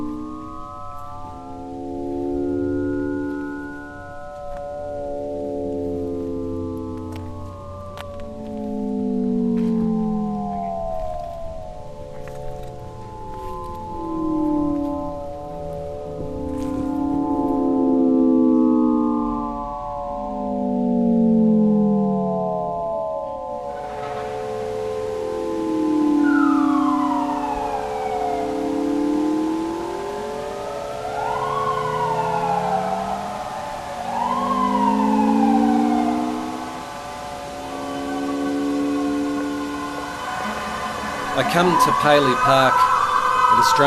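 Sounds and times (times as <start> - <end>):
several fire engine sirens wailing during a fire engine parade: 0.0 - 43.8
city traffic: 23.7 - 43.8
speech: 41.5 - 42.9, 43.6 - 43.8.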